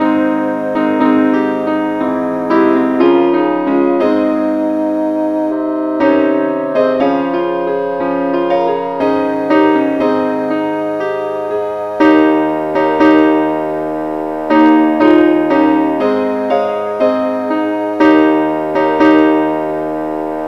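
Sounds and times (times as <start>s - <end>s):
keyboard key D flat note: 0.0s - 20.4s.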